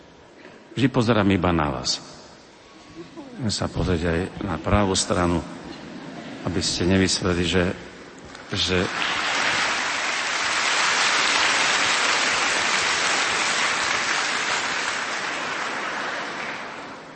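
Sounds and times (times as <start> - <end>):
speech: 0.8 - 2.2, 3.4 - 5.6, 6.4 - 7.8, 8.5 - 9.2
large audience applauding: 8.3 - 17.1.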